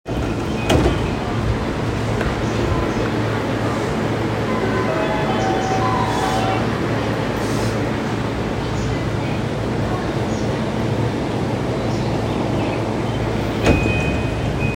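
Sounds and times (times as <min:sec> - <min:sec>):
train sounds on the Yokohama Line north of Hachioji-Minamino: 0:00.1 - 0:14.7.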